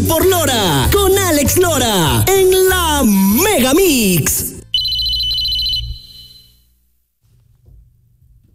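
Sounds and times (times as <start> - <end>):
speech: 0.1 - 2.4, 3.6 - 4.4
old-fashioned telephone bell ringing in a rapid metallic trill: 4.8 - 6.6.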